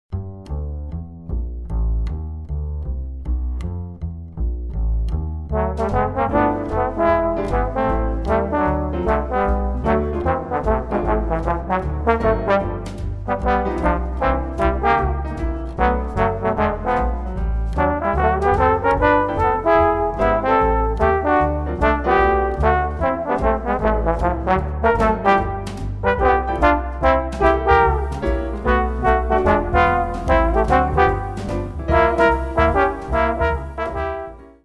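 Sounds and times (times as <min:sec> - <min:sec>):
swing music: 0:00.1 - 0:34.6.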